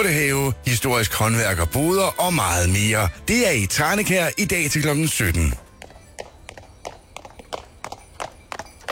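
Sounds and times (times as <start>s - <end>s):
speech: 0.0s - 5.6s
horse hooves clip-clopping on a hard surface: 4.6s - 8.9s.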